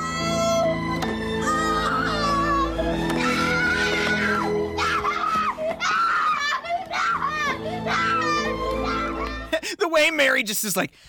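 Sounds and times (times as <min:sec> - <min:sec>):
boy screaming and wailing in a tantrum: 0:00.0 - 0:09.6
speech: 0:10.1 - 0:11.0.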